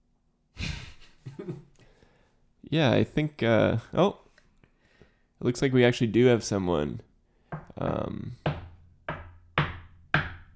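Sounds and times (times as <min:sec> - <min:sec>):
speech: 0:02.7 - 0:04.2, 0:05.4 - 0:07.1, 0:07.8 - 0:08.4
loud slow heavy knocking on a door: 0:07.6 - 0:10.5.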